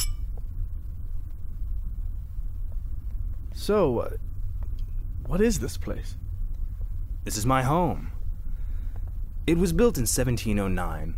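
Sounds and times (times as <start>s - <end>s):
glasses clinking in a toast: 0.0s - 0.3s
low steady rumble: 0.0s - 11.1s
speech: 3.6s - 4.3s, 5.3s - 6.2s, 7.2s - 8.2s, 9.5s - 11.1s.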